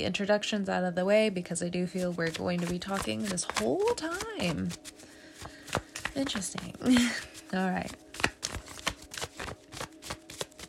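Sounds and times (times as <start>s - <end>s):
speech: 0.0s - 5.1s, 5.7s - 8.0s
deck of cards shuffled before a card reading: 1.9s - 10.6s.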